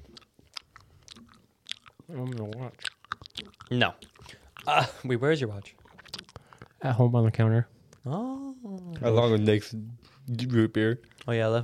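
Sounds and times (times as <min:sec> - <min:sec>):
quiet chewing of gum: 0:00.0 - 0:06.8, 0:10.0 - 0:11.4
speech: 0:02.1 - 0:03.0, 0:03.7 - 0:04.1, 0:04.7 - 0:05.8, 0:06.8 - 0:11.6.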